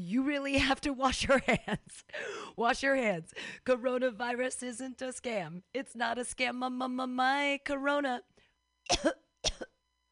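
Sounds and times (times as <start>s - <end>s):
speech: 0.0s - 8.3s, 8.9s - 9.6s
harsh coughs from smoking weed: 8.9s - 9.8s.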